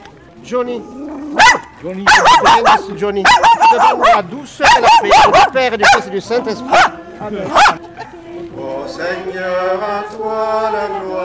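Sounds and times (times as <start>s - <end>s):
speech: 0.4s - 7.8s, 8.9s - 11.2s
dog barking during a pet blessing: 1.4s - 6.1s, 6.7s - 8.1s.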